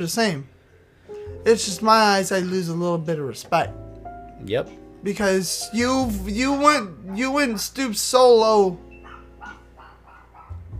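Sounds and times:
speech: 0:00.0 - 0:00.6, 0:01.4 - 0:03.8, 0:04.4 - 0:08.9
dog barking: 0:07.0 - 0:08.0, 0:09.0 - 0:10.7.

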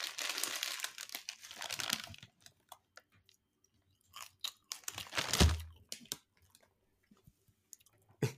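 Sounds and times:
crinkly crackling: 0:00.0 - 0:06.8
crisp crunching and chewing of seeds: 0:01.0 - 0:06.8.

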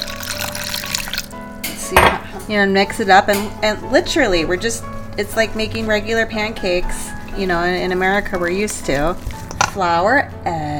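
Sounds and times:
water pouring into a mixing bowl of flour eggs salt and pepper: 0:00.0 - 0:01.4
speech: 0:01.9 - 0:10.6.

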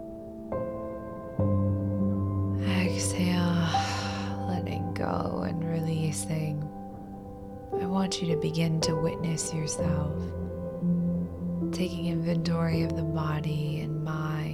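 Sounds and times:
steady sustained musical drone: 0:01.5 - 0:14.5
slow deep breathing in and out: 0:03.6 - 0:04.6
speech: 0:07.8 - 0:10.4, 0:11.8 - 0:14.5.

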